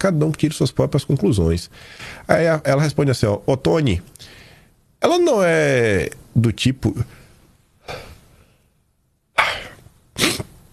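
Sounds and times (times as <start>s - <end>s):
speech: 0.0s - 4.4s, 5.0s - 7.2s
stifled sneezes: 9.4s - 10.6s.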